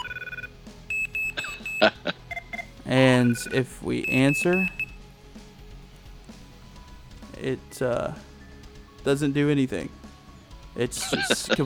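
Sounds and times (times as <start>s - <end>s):
telephone line ringing with electronic tone bursts: 0.0s - 4.9s
speech: 3.2s - 4.8s, 7.4s - 8.3s, 9.0s - 10.0s, 10.8s - 11.6s
laughter: 10.9s - 11.6s.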